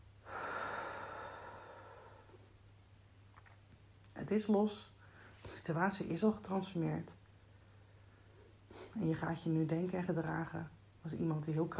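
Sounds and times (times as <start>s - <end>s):
deep breath: 0.2s - 2.5s
speech: 4.2s - 4.9s, 5.6s - 7.2s, 8.9s - 11.7s.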